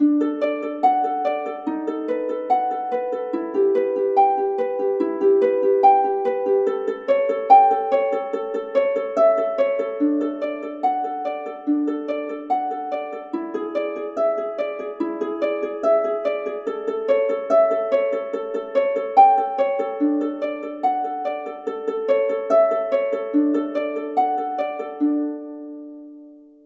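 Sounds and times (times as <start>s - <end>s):
ukulele prelude in D: 0.0s - 26.6s.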